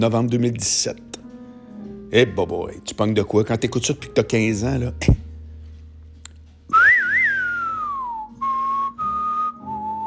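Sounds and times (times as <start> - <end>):
speech: 0.0 - 1.2, 2.1 - 5.2
soft steady low accompaniment: 0.0 - 10.0
whistled melody of a western film theme: 6.7 - 10.0.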